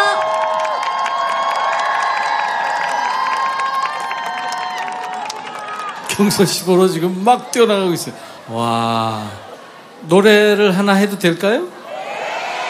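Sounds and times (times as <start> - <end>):
large audience cheering and clapping for a DJ and singer-songwriter: 0.0 - 6.8
speech: 6.2 - 11.8.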